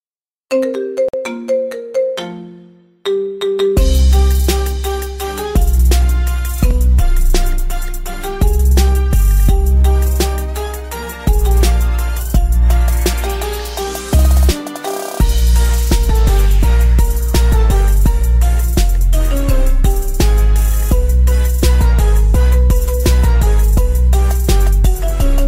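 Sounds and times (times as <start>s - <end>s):
marimba ringtone melody: 0.5s - 7.1s, 8.0s - 25.4s.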